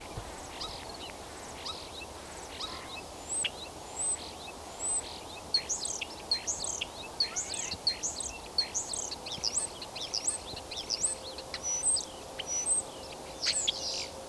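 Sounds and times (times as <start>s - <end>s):
European Starling Sturnus vulgaris: 0.1s - 14.1s.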